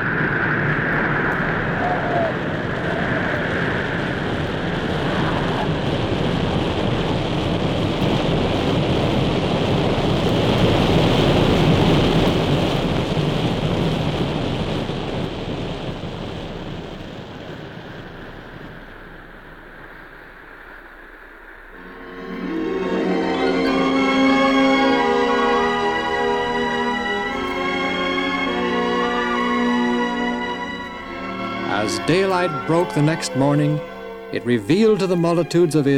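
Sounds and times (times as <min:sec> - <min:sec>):
roaring rushing water: 0:00.0 - 0:21.9
thunder rumbling: 0:00.0 - 0:35.9
speech: 0:32.1 - 0:35.9.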